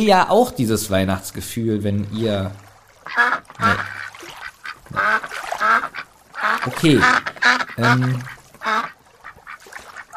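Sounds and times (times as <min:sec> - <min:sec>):
speech: 0:00.0 - 0:03.3, 0:06.6 - 0:08.3
duck quacking: 0:03.1 - 0:10.1.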